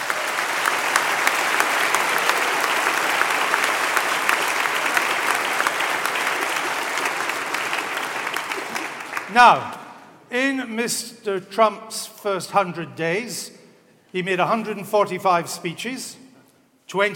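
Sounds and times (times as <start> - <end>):
audience applause for a panel of guests: 0.0 - 10.0
speech: 9.4 - 16.2, 16.9 - 17.1.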